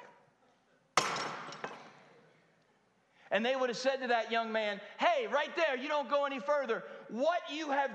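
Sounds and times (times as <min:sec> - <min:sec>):
clay pot dropped onto a hard floor: 0:01.0 - 0:01.9
speech: 0:03.3 - 0:07.9.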